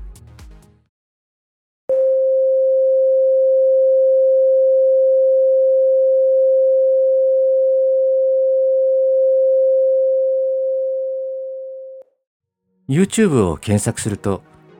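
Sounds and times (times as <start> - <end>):
pure mid-range sine tone about 528 Hz: 1.9 - 12.0
speech: 12.9 - 14.5.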